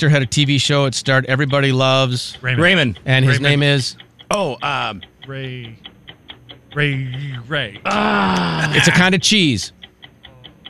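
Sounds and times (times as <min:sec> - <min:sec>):
speech: 0:00.0 - 0:05.9, 0:06.8 - 0:09.8
countdown clock timer ticking: 0:00.0 - 0:10.6
laughter: 0:03.2 - 0:03.6, 0:07.1 - 0:09.5
drawn-out vocal sounds: 0:07.1 - 0:09.0.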